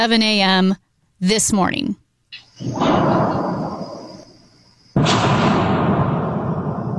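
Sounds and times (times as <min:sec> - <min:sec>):
speech: 0:00.0 - 0:02.0, 0:02.6 - 0:03.2
loud deep booms with rolling rumble, possibly a meteor's sonic boom: 0:02.6 - 0:04.3, 0:05.0 - 0:06.9.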